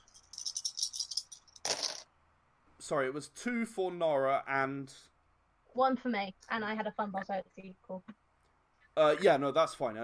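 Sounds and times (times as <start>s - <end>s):
five dice rattling in a shaker: 0.0s - 2.0s
dice clattering onto a hard surface: 0.3s - 2.0s
speech: 2.9s - 5.1s, 5.8s - 8.2s, 9.0s - 10.0s.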